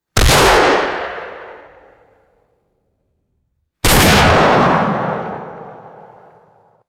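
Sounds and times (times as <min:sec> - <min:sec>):
booming crunchy shotgun blasts: 0:00.2 - 0:02.0, 0:03.8 - 0:06.6.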